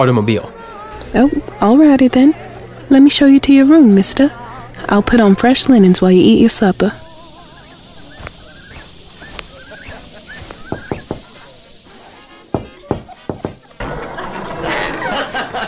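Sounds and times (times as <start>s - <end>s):
speech: 0.0s - 7.0s
faint chirps: 0.5s - 13.8s
laughter: 3.6s - 4.9s, 6.7s - 15.6s
rushing hiss: 4.8s - 13.8s
sharp knocking on a door: 10.7s - 11.2s, 12.5s - 13.6s.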